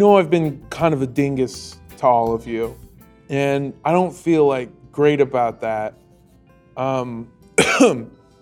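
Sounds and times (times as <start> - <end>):
speech: 0.0 - 6.0, 6.8 - 8.2
person coughing with a raspy throaty hack: 7.6 - 8.1.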